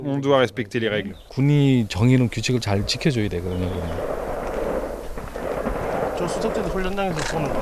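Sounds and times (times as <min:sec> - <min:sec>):
speech: 0:00.0 - 0:04.3, 0:06.2 - 0:07.6
rifle gunfire from military exercises in a military zone near a militarized border: 0:03.9 - 0:07.6.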